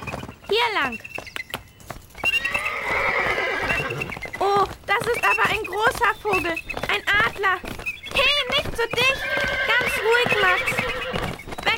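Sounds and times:
ridden horse hooves clip-clopping toward a castle meadow: 0:00.0 - 0:11.7
speech: 0:00.5 - 0:01.2, 0:05.0 - 0:10.9
ridden horse whinnying: 0:02.2 - 0:04.3, 0:08.9 - 0:11.4.

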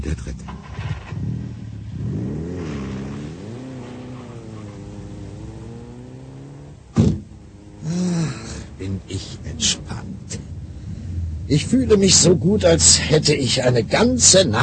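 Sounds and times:
speech: 0:00.0 - 0:00.8, 0:08.9 - 0:10.4, 0:11.5 - 0:14.6
car engines starting and revving: 0:00.0 - 0:14.6.

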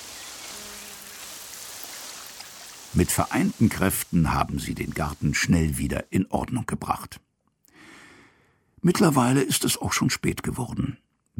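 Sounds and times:
flowers in a garden being watered: 0:00.0 - 0:06.1
speech: 0:02.9 - 0:07.3, 0:08.8 - 0:11.3.

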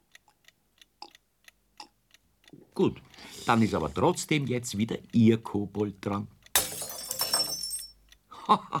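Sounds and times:
speech: 0:02.8 - 0:06.4, 0:08.5 - 0:08.7
glass shattering: 0:06.6 - 0:08.0
sharp glass clinks: 0:06.6 - 0:08.0.

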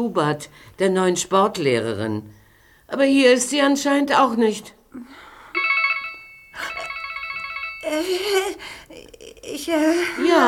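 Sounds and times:
speech: 0:00.0 - 0:05.2, 0:07.9 - 0:10.4
mobile phone ringtone: 0:05.6 - 0:08.1.

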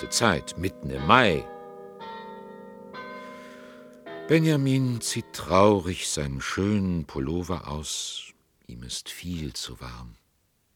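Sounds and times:
speech: 0:00.0 - 0:01.6, 0:04.3 - 0:10.2
glockenspiel bells chiming: 0:00.0 - 0:06.0.

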